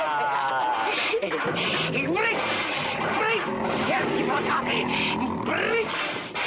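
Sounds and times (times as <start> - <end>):
laughter: 0.0 - 2.6
several tigers growling and roaring around a cage: 0.0 - 6.4
large bone run along cage bars: 0.9 - 6.4.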